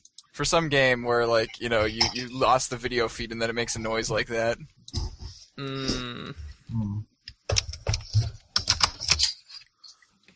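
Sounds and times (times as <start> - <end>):
speech: 0.4 - 4.8, 5.6 - 7.1
typing on a computer keyboard: 7.5 - 9.3.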